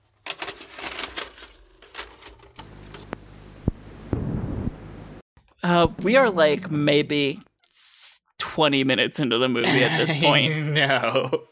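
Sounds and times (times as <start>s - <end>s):
tape mechanism fluttering mechanical clatter and whir: 0.0s - 3.1s
tape hiss: 2.6s - 5.2s
speech: 5.7s - 7.5s, 8.6s - 11.5s
laughter: 9.6s - 11.5s.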